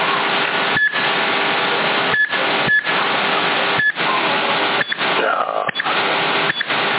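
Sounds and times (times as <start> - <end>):
loud steady hiss of radio static: 0.0 - 6.9
short electronic beeps from a CB radio receiver when changing channel: 0.8 - 1.0, 2.1 - 2.9, 3.8 - 4.0, 4.8 - 5.0, 6.5 - 6.7.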